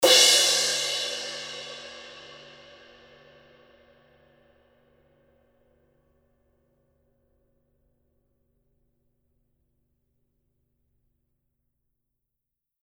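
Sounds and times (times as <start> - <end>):
black 20 Big Beat Edge Paiste 2002 cymbal: 0.0 - 5.2.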